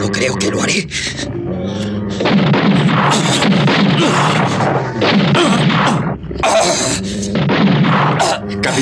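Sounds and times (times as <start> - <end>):
dense continuous roar: 0.0 - 8.8
gunshots fired at attacking wild beasts: 2.0 - 8.8.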